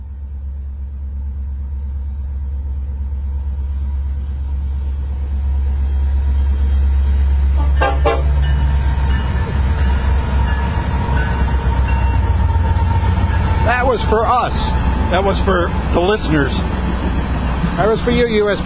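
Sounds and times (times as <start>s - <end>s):
freight train rumbling: 0.0s - 18.6s
freight train locomotive horn honking: 7.6s - 8.4s
speech: 14.1s - 16.8s, 17.8s - 18.6s.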